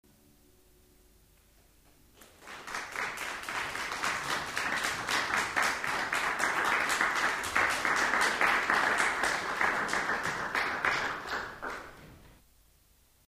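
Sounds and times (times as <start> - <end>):
medium applause from people: 2.2 - 12.4.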